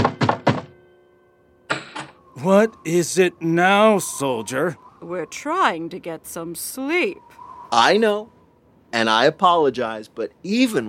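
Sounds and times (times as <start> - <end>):
knocking on a door: 0.0 - 0.7
speech: 2.4 - 10.8.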